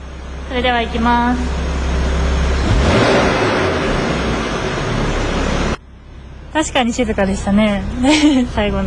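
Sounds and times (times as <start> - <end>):
speech: 0.5 - 1.6, 6.6 - 8.8
sports car engine revving with closed exhaust muffler valve: 1.4 - 5.8.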